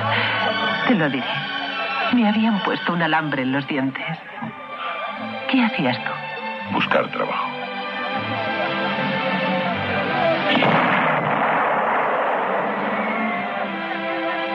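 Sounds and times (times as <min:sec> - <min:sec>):
steady tonal background: 0:00.0 - 0:14.5
speech: 0:00.9 - 0:01.5, 0:02.1 - 0:04.5, 0:05.5 - 0:07.5, 0:08.3 - 0:08.6
new 77 cannon firing about 50 kilometres away: 0:10.5 - 0:13.7.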